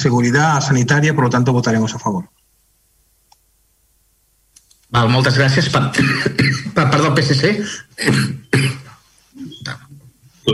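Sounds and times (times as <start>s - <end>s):
speech: 0.0s - 2.4s, 4.9s - 9.8s
person sneezing: 8.0s - 9.8s.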